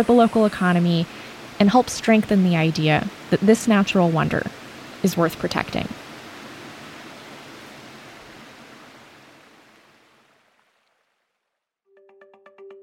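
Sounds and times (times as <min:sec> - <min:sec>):
speech: 0:00.0 - 0:06.0
rushing water of a boiling river: 0:00.0 - 0:11.2
tonal music: 0:11.9 - 0:12.8.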